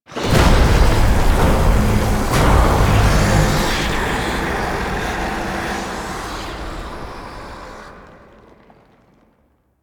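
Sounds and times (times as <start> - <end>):
gameplay alarm stinger: 0.2 - 7.8.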